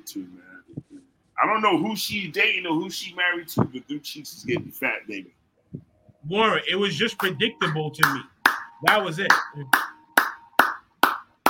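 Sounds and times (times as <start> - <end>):
speech: 0.0 - 0.8, 1.4 - 9.9
sharp hand claps: 7.2 - 11.4.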